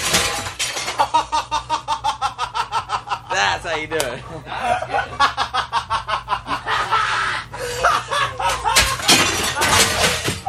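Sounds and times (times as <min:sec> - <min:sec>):
glass smashing with a loud crash: 0:00.0 - 0:01.1, 0:08.7 - 0:10.4
laughter: 0:01.0 - 0:10.1
speech: 0:03.7 - 0:05.5.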